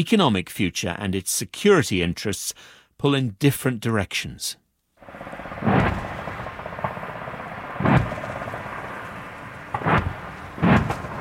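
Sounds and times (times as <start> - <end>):
speech: 0.0 - 5.4
heavy booms from a military live fire exercise near Townsville Queensland Australia: 5.0 - 11.1
low steady rumble: 5.0 - 11.1.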